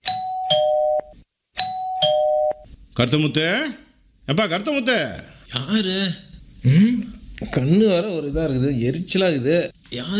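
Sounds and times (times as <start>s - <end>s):
electronic doorbell chiming at a house's front door: 0.0s - 1.0s, 1.6s - 2.6s
speech: 3.0s - 10.1s.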